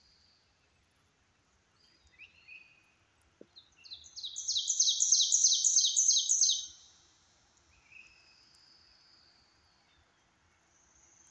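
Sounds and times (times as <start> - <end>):
ovenbird Seiurus aurocapilla singing in Maryland: 3.8 - 6.8.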